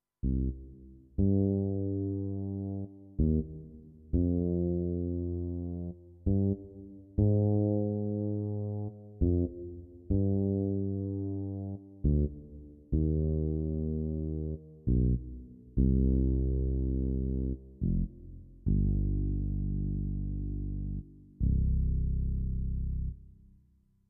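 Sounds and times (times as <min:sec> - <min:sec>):
fretless bass: 0:00.2 - 0:23.5.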